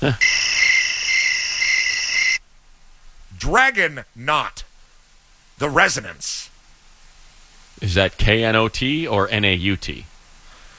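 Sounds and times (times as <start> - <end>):
speech: 0.0 - 0.4, 3.5 - 4.6, 5.6 - 6.5, 7.8 - 10.1
high-pitched cricket trill: 0.0 - 2.4.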